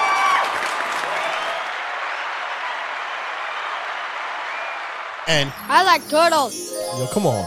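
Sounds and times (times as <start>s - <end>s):
canned applause and cheering sound effect from a soundboard button: 0.0s - 5.6s
speech: 5.3s - 7.4s.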